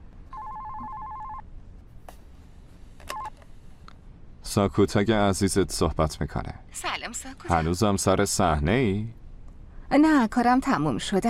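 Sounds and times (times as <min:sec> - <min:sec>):
electronic telephone ringing: 0:00.3 - 0:01.4
speech: 0:04.5 - 0:09.2, 0:09.9 - 0:11.2.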